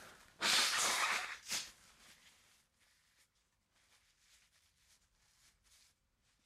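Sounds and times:
person blowing nose: 0.0 - 1.8.

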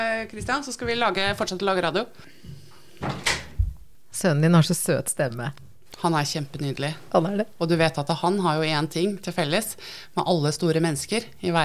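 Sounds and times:
speech: 0.0 - 3.3, 4.2 - 11.6
door swinging shut with a low solid thud: 3.0 - 3.8.

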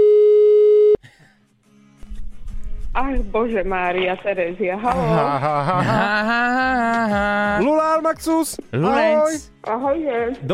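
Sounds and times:
telephone line tone while placing a call: 0.0 - 1.0
speech: 3.0 - 10.5
laughter: 4.8 - 7.6.

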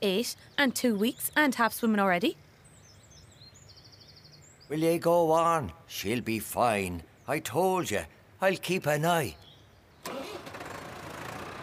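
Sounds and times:
speech: 0.0 - 2.4, 4.7 - 9.4, 10.0 - 10.5
tractor engine cranking and starting: 10.0 - 11.6.

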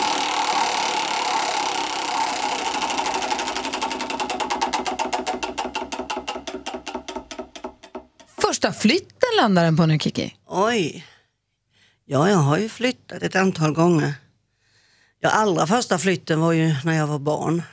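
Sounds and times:
spinning anecdote wheel ratcheting clicks: 0.0 - 8.4
speech: 8.6 - 11.1, 12.1 - 14.2, 15.2 - 17.7.

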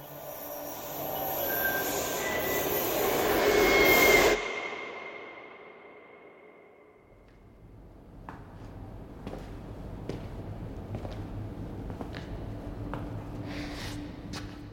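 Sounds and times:
subway train wheels squealing loudly on the tracks: 0.0 - 4.8
subway train roaring past: 0.0 - 7.1.

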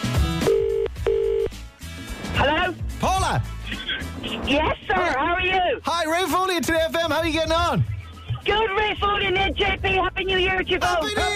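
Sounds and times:
music: 0.0 - 11.3
phone line ringing tone of short electronic buzzes: 0.4 - 1.5
speech: 3.4 - 11.3.

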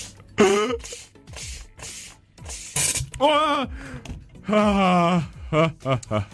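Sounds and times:
soda maker injecting gas into milk: 0.0 - 3.1
people gasping and crying out: 3.2 - 6.3.

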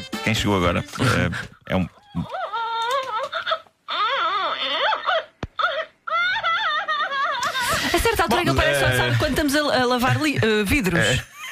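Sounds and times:
speech: 0.3 - 2.4, 7.9 - 11.4
woman imitating a crying baby into a microphone for a toy: 2.1 - 7.6
laughter: 6.2 - 11.4.

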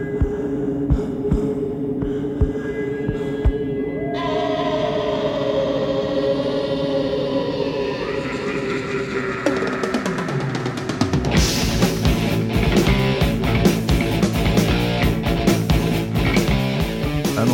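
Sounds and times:
heartbeat thumping: 0.0 - 3.8
rising tones: 1.6 - 17.1
full band music: 10.9 - 17.5.

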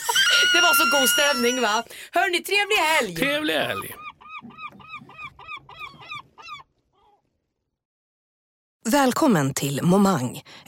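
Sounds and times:
seagull calling with squawking cries: 0.0 - 1.8, 3.3 - 7.3
speech: 0.5 - 4.1, 8.8 - 10.6.

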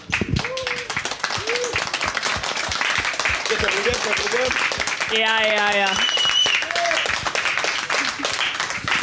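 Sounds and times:
audience applause for a band: 0.0 - 9.0
audience voices cheering: 0.1 - 9.0
speech: 3.8 - 6.2
whistle-like tone: 6.0 - 6.7.

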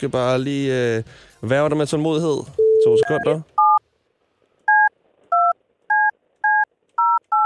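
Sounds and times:
speech: 0.0 - 3.5
dual-tone beeps of a phone number being keyed in: 2.6 - 3.8, 4.7 - 7.4.

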